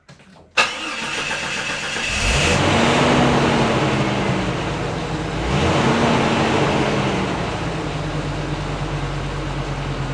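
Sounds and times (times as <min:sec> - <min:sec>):
car starting off: 0:00.6 - 0:10.1.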